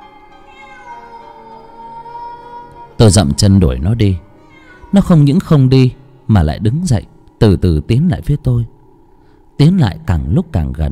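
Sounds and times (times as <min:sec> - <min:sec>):
cat meowing: 0:00.3 - 0:01.5, 0:04.4 - 0:05.3
speech: 0:03.0 - 0:04.3, 0:04.9 - 0:08.7, 0:09.6 - 0:10.9.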